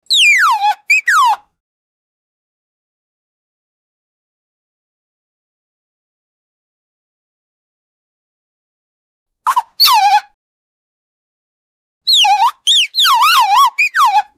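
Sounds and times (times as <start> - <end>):
clown cartoon sound effects: 0.1 - 1.4, 9.5 - 10.2, 12.1 - 14.3.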